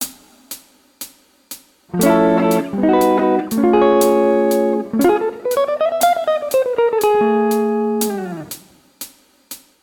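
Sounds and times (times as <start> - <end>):
guitar: 1.9 - 8.6.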